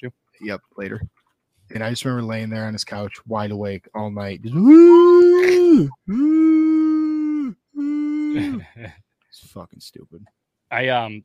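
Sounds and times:
speech: 0.0 - 6.7, 8.4 - 11.2
person mimicking a beagle's howl: 4.5 - 8.6.

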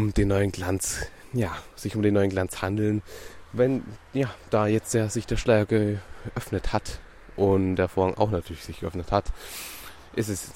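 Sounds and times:
speech: 0.0 - 10.5
heavy breathy exhale from someone walking and puffing from exertion: 9.4 - 10.1.

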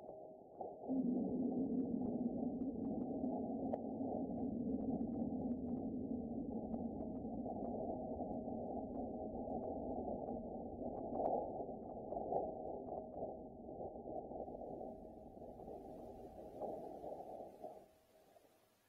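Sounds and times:
faint droning hum: 0.2 - 18.5
amplified vibrations recorded on the surface of Mars: 0.9 - 10.7.

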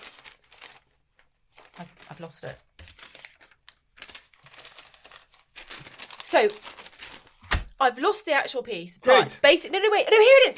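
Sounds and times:
paper newspaper cuttings rustling: 0.0 - 7.8
speech: 1.8 - 2.7, 6.3 - 6.8, 7.8 - 10.5.

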